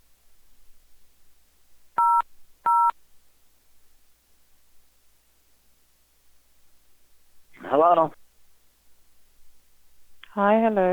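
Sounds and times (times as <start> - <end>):
telephone keypad button tones pressed while answering a call: 2.0 - 2.9
speech: 7.8 - 8.2, 10.4 - 10.9.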